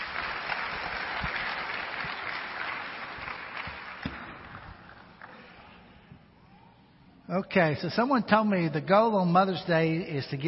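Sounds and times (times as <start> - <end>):
large crowd applauding: 0.0 - 5.6
speech: 7.3 - 10.4.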